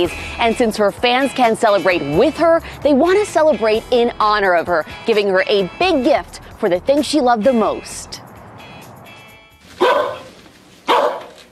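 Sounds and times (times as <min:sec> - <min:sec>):
speech: 0:00.0 - 0:08.2
dog barking: 0:09.8 - 0:11.4.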